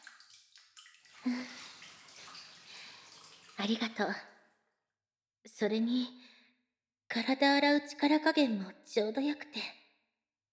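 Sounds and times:
warm bath water splashing, lapping and trickling in a bathtub: 0.0 - 4.5
speech: 1.2 - 1.6, 3.6 - 4.3, 5.6 - 6.2, 7.1 - 9.8.

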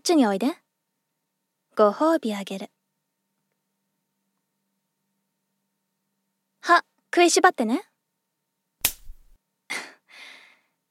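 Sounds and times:
speech: 0.0 - 0.6, 1.8 - 2.8, 6.6 - 7.9
face slap: 8.8 - 9.4.

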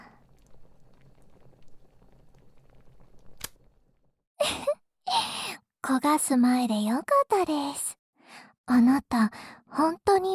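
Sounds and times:
pot bubbling on the stove: 0.0 - 4.1
speech: 5.9 - 7.9, 8.7 - 10.3.

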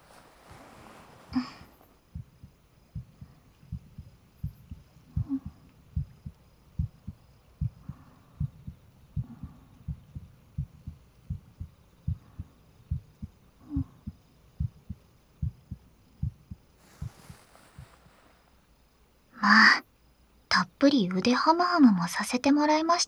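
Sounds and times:
brief rustling noises: 0.0 - 2.0, 16.8 - 18.6
pounding heartbeat in low thumps: 2.1 - 17.2
speech: 20.8 - 23.0.

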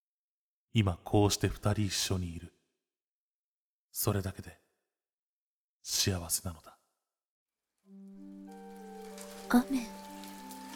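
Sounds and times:
speech: 0.7 - 2.6, 4.0 - 4.6, 5.8 - 6.8, 9.5 - 10.0
light steady rain falling on ground: 7.9 - 10.7.

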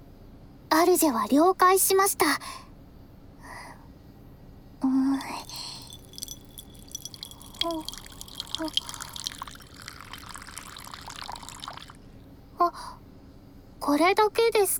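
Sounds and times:
speech: 0.7 - 2.7, 7.6 - 8.0, 8.6 - 8.9, 12.6 - 13.0, 13.8 - 14.7
water poured from a small water dropper onto an inkstone: 5.1 - 12.0.

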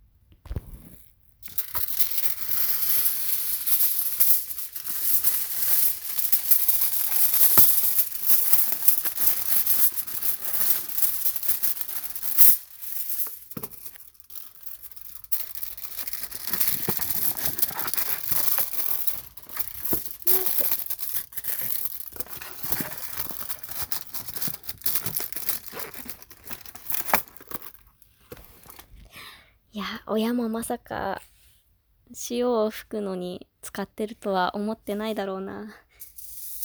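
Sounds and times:
aluminium foil crinkling and rustling as it is prepared for wiping feet: 0.5 - 28.9
speech: 29.8 - 31.2, 32.3 - 35.8.

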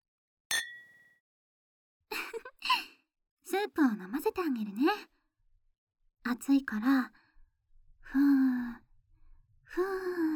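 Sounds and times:
glasses of water clinking in a toast: 0.5 - 1.0
speech: 3.6 - 5.2, 6.2 - 7.2, 8.1 - 8.8, 9.7 - 10.3.

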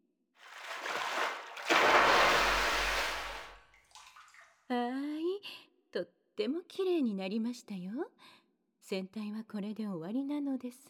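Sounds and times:
water rinsing something off: 0.4 - 4.5
speech: 6.0 - 10.8.

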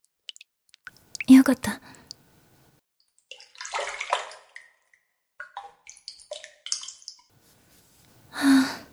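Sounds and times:
water dripping in a hot bath: 0.3 - 2.7, 5.5 - 8.9
water splashing and sloshing as someone gets into a hot bath: 0.8 - 2.7, 3.3 - 8.9
speech: 1.3 - 2.0.

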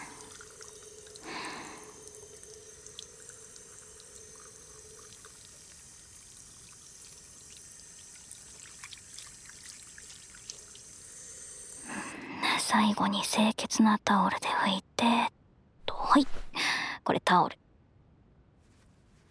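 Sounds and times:
soft drips and splashes of water: 0.0 - 12.3
running water rinsing soap foam off: 0.0 - 12.4
speech: 12.7 - 15.3, 17.1 - 17.6.

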